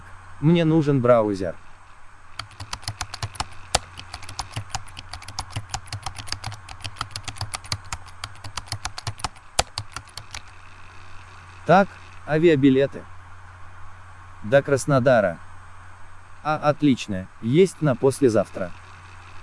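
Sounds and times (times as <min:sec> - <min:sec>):
steady low hum: 0:00.0 - 0:19.4
speech: 0:00.4 - 0:01.7, 0:11.7 - 0:13.1, 0:14.4 - 0:15.4, 0:16.4 - 0:18.8
typing on a computer keyboard connected to a laptop: 0:02.4 - 0:10.6.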